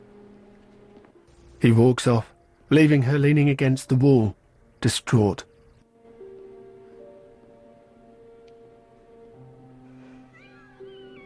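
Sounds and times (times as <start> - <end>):
speech: 1.6 - 5.5
kittens meowing while being stroked on a lap on a bed: 10.0 - 11.2.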